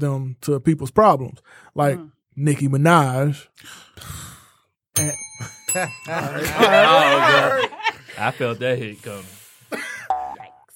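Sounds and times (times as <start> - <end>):
speech: 0.0 - 4.3, 5.0 - 9.9
small bright bell ringing: 5.0 - 7.6
loud overlapping laughter: 5.7 - 8.8.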